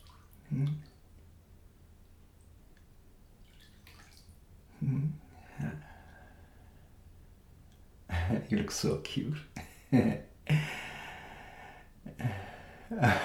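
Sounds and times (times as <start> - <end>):
water poured over a person in a bubble bath: 0.0 - 0.4, 3.4 - 4.4
quiet hiss: 0.0 - 13.2
speech: 8.4 - 10.8, 13.0 - 13.2.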